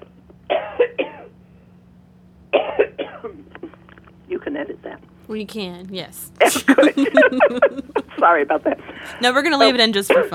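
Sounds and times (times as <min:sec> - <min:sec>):
faint steady hum: 0:00.0 - 0:10.3
person coughing: 0:02.6 - 0:04.0, 0:06.4 - 0:08.0
speech: 0:05.3 - 0:10.3
laughter: 0:06.4 - 0:10.3.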